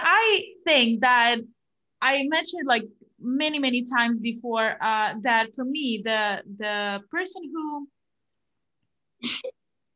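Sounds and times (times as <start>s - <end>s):
speech: 0.4s - 8.0s, 9.2s - 9.6s
sneeze: 9.2s - 9.6s.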